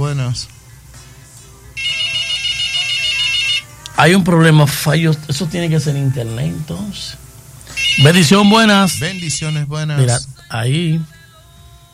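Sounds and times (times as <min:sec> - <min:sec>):
speech: 0:00.3 - 0:00.6, 0:04.0 - 0:07.2, 0:08.0 - 0:11.2
electronic phone ringtone for an incoming call: 0:01.8 - 0:03.7, 0:07.7 - 0:09.6.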